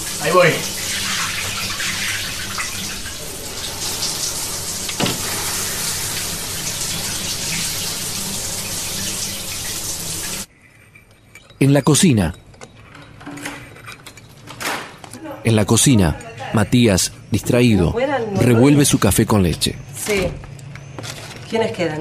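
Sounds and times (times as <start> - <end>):
shower spraying water: 0.0 - 10.5
speech: 0.2 - 0.8, 11.6 - 12.4, 15.4 - 20.5, 21.5 - 21.9.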